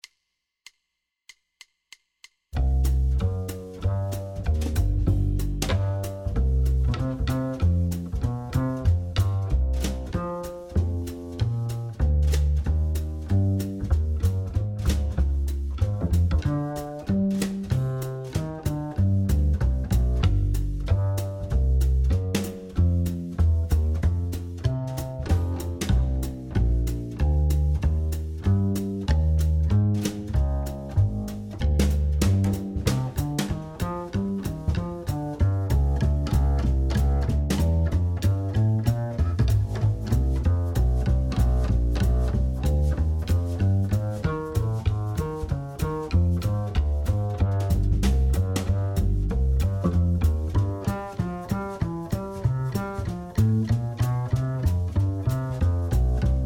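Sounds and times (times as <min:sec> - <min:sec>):
bass drums: 0:02.5 - 0:56.4.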